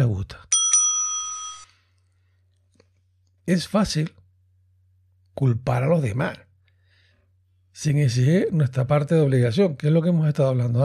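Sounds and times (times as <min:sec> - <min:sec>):
bright bell sound effect ringing: 0:00.5 - 0:01.7
speech: 0:03.5 - 0:04.2, 0:05.4 - 0:06.5, 0:07.8 - 0:10.8.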